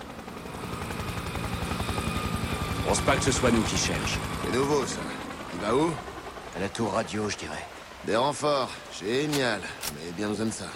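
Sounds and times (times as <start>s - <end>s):
helicopter rotor thumping: 0.0s - 7.4s
helicopter engine whine: 0.0s - 7.9s
speech: 2.9s - 10.7s.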